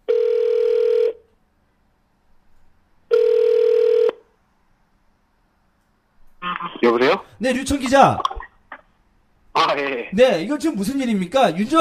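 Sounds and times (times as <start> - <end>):
buzzy telephone ringback tones as a call connects: 0.1 - 1.2, 3.1 - 4.2
speech: 7.0 - 8.3, 10.1 - 11.7.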